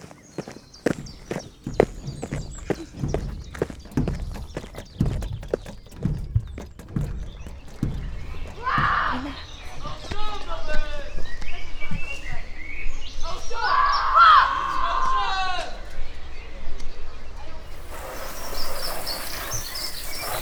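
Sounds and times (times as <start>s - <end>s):
bird chirping: 0.0s - 14.4s, 15.9s - 20.4s
busy noise: 0.3s - 20.4s
hollow knocks: 0.9s - 10.9s.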